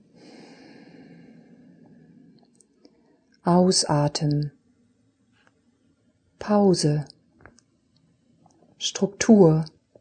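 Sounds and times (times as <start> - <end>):
slow soft inhale: 0.1 - 2.4
speech: 3.4 - 4.6, 6.5 - 7.2, 8.8 - 9.8.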